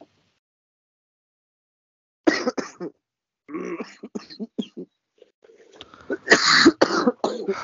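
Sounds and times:
light dry coughs: 2.3s - 4.9s, 6.1s - 7.6s.

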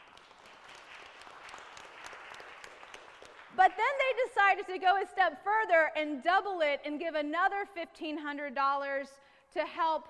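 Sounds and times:
audience applause for a group's donation to a special offering: 0.0s - 3.7s
speech: 3.6s - 10.0s.

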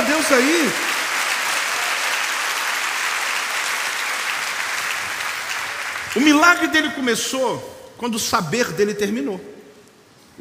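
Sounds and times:
audience applause of many hands clapping: 0.0s - 6.7s
speech: 0.3s - 0.9s, 6.2s - 9.6s.

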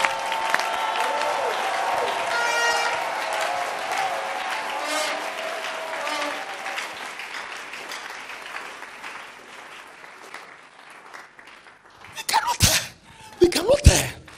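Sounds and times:
audience cheering: 0.0s - 9.7s
audience clapping: 0.0s - 14.3s.

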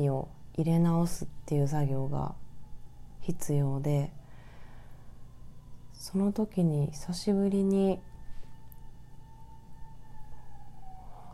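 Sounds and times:
speech: 0.0s - 2.4s, 3.2s - 4.2s, 6.0s - 8.1s
ambulance siren wailing outside: 2.6s - 6.9s, 7.6s - 11.3s.

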